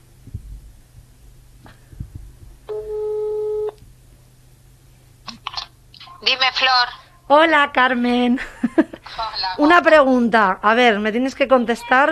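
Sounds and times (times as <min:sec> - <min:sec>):
low hum: 0:00.0 - 0:12.1
telephone ringback tone: 0:02.7 - 0:03.8
speech: 0:06.5 - 0:12.1.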